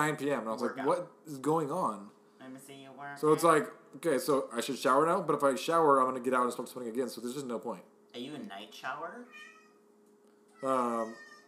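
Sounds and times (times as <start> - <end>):
speech: 0.0 - 9.5, 10.6 - 11.2
quiet hum: 0.0 - 11.4
cat meowing: 9.2 - 9.8, 10.6 - 11.4.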